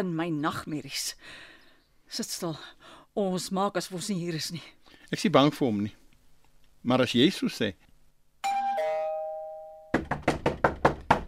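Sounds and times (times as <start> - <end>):
speech: 0.0 - 1.5, 2.1 - 6.0, 6.8 - 7.9
two-tone doorbell chime: 8.4 - 10.0
firm loud knocks on a door: 9.9 - 11.2.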